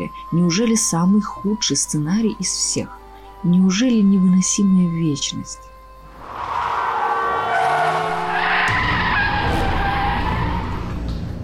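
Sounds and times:
speech: 0.0s - 5.7s
rough scraping noise: 6.1s - 11.0s
car brakes screeching: 6.1s - 11.3s
car horn honking: 6.3s - 10.6s.

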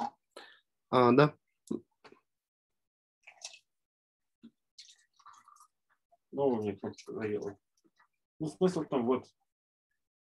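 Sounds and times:
speech: 0.9s - 1.9s, 6.4s - 7.6s, 8.4s - 9.4s
tea infusion draining from a brewing device with a button-operated valve: 3.2s - 9.4s.

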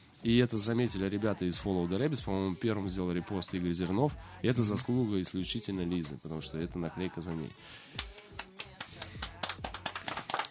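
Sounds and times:
speech: 0.2s - 8.2s
hand clapping: 8.0s - 10.4s.

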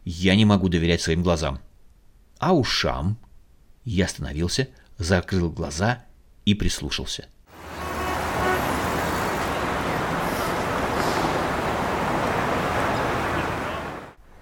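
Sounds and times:
speech: 0.1s - 1.7s, 2.4s - 3.2s, 3.8s - 7.4s
bus engines idling and running at a bus turnaround loop: 7.5s - 14.4s.

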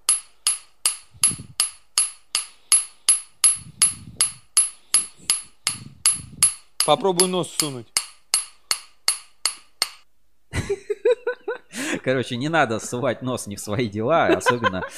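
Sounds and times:
two hammers tapping together: 0.0s - 10.0s
speech: 6.9s - 8.0s, 12.0s - 14.9s
laughter: 10.5s - 13.3s, 14.2s - 14.9s.

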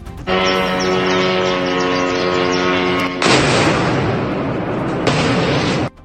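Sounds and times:
drone engine buzzing with a strong whine: 0.0s - 6.0s
sustained roaring rumble: 0.3s - 6.0s
loud explosion of drone crashing into fuel tank: 1.3s - 6.0s.

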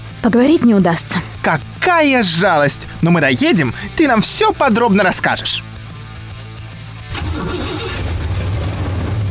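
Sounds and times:
speech: 0.2s - 5.7s
Impala car engine starting and driving off: 7.0s - 9.2s.

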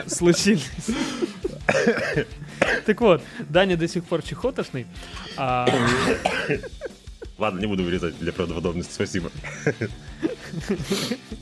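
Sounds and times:
laughter: 0.0s - 2.6s, 5.2s - 7.7s, 9.4s - 11.4s
sharp coughs: 0.0s - 3.0s, 5.2s - 6.9s
speech: 0.0s - 11.4s.

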